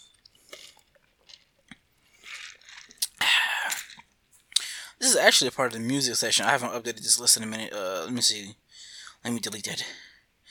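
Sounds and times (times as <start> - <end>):
mouth clicks and smacks: 0.0 - 4.8
person sipping sake: 0.0 - 5.0
speech: 5.1 - 8.6, 9.2 - 10.1.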